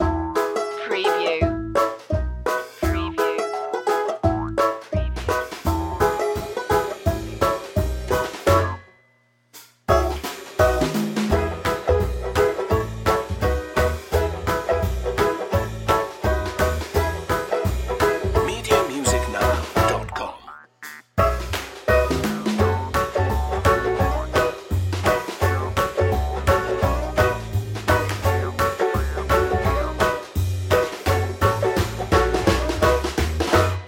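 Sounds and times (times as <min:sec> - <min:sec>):
party barn banjo loop: 0:00.0 - 0:08.8, 0:09.9 - 0:33.8.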